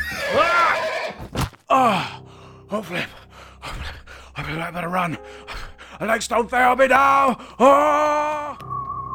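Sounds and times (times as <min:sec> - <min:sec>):
horse whinnying: 0:00.0 - 0:01.3
speech: 0:01.8 - 0:03.2, 0:04.5 - 0:05.4, 0:06.0 - 0:08.6.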